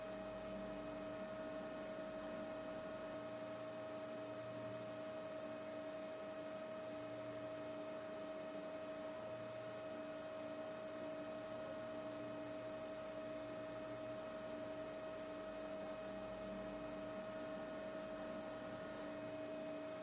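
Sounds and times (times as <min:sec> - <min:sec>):
refrigeration unit humming with midrange whine: 0:00.0 - 0:20.0.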